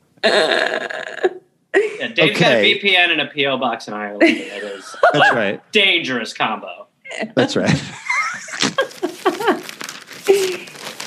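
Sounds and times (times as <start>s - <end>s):
speech: 0.2s - 0.6s, 2.2s - 8.0s
voice sounds: 0.2s - 3.0s, 4.2s - 6.0s, 7.1s - 8.0s
laughter: 2.0s - 2.8s, 4.2s - 5.6s, 7.5s - 9.7s
old newspaper pages rustling and crinkling as they are unfolded: 8.5s - 11.0s.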